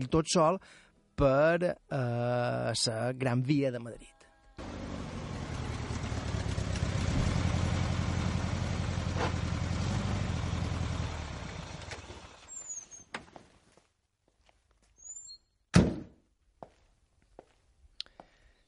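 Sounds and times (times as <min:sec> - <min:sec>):
speech: 0:00.0 - 0:04.1
car engine running: 0:04.6 - 0:12.5
faint footsteps of a man walking along a deserted street in Madrid: 0:13.1 - 0:15.0, 0:16.6 - 0:18.4.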